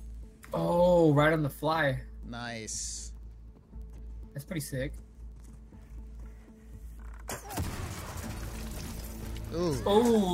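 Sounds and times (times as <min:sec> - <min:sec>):
video game sound: 0:00.0 - 0:10.3
speech: 0:00.5 - 0:03.1, 0:04.4 - 0:05.0, 0:09.5 - 0:10.3
explosion in a video game: 0:07.5 - 0:09.2.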